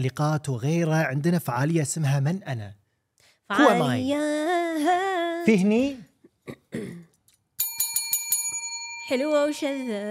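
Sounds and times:
speech: 0.0 - 2.8, 3.5 - 7.0, 9.1 - 10.0
quiz answer bell ringing with a bright metallic ring: 7.6 - 10.0.

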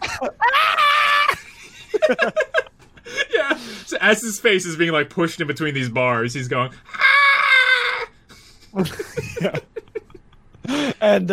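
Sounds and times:
person imitating a long high-pitched scream: 0.0 - 1.4, 6.9 - 8.1
laughter: 0.0 - 3.8, 8.3 - 11.0
speech: 4.0 - 7.0, 8.8 - 9.7, 11.0 - 11.3.

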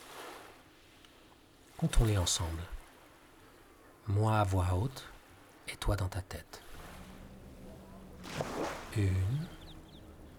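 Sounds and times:
soft wave washing up on a sandy beach: 0.0 - 1.0, 6.6 - 9.8
speech: 1.8 - 2.8, 4.1 - 5.1, 5.7 - 6.6, 8.4 - 9.5.

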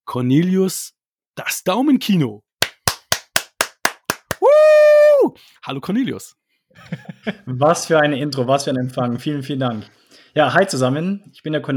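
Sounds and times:
speech: 0.1 - 2.5, 5.2 - 11.7
sharp claps welcoming a guest: 2.6 - 4.6
laughter: 6.8 - 7.5.

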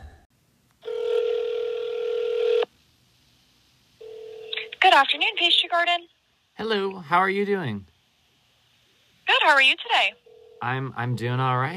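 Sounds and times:
telephone ringing tone down the line on a call to a pastry shop: 0.8 - 2.7, 4.0 - 4.7, 10.2 - 11.2
speech: 5.0 - 7.9, 9.3 - 11.7.

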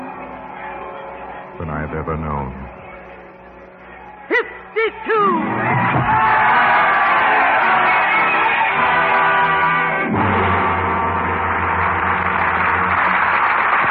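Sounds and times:
speech: 1.6 - 2.7, 4.8 - 6.8
large crowd in Paris roaring and shouting: 3.8 - 13.8.

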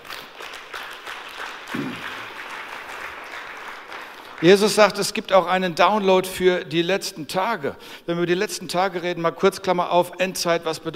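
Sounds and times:
audience clapping: 0.0 - 5.3
speech: 4.4 - 10.9.

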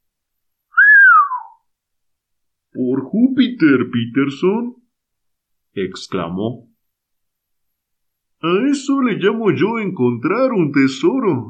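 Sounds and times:
clear human whistle sliding downward in pitch: 0.7 - 1.6
speech: 2.8 - 4.8, 5.8 - 6.7, 8.4 - 11.4.

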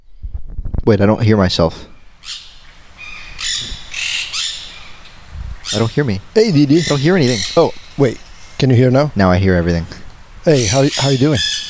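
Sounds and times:
speech: 0.8 - 2.4, 5.7 - 11.6
parrot chirps: 1.9 - 8.7, 10.5 - 11.6
parrots squawking: 2.2 - 8.6, 10.5 - 11.6.

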